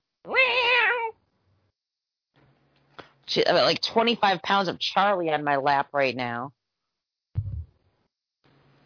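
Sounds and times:
domestic cat meowing: 0.3 - 1.2
speech: 3.3 - 6.6.

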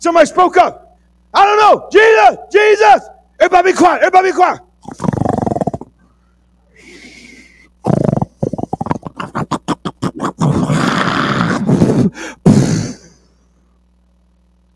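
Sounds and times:
speech: 0.0 - 5.1
voice imitating loud snoring: 4.8 - 5.9, 6.8 - 13.2.

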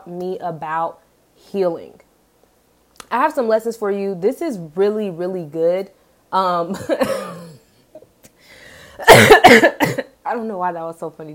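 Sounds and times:
speech: 0.0 - 2.0, 3.1 - 7.4, 9.0 - 11.3
harsh coughing: 6.8 - 7.8, 9.0 - 10.1.

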